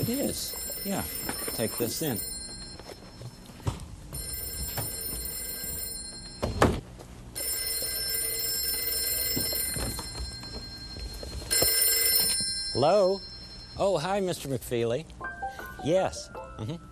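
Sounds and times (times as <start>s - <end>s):
telephone ringing: 0.0s - 3.5s, 4.1s - 6.8s, 7.4s - 14.2s
speech: 0.1s - 2.4s, 12.8s - 15.2s, 15.8s - 16.8s.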